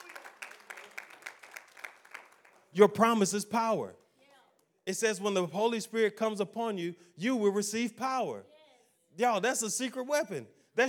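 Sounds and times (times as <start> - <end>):
audience clapping in a steady quick rhythm: 0.0 - 3.2
speech: 2.8 - 4.0, 4.9 - 8.5, 9.2 - 10.8.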